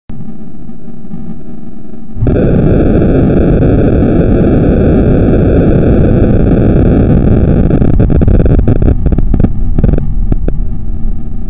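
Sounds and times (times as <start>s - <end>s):
earthquake rumble: 2.2s - 11.4s.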